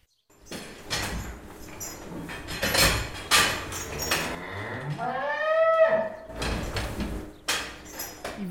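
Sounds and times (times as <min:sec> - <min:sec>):
clanking, rattling and banging inside a barn: 0:00.4 - 0:05.2, 0:06.0 - 0:08.5
cow mooing in a barn: 0:04.3 - 0:06.3.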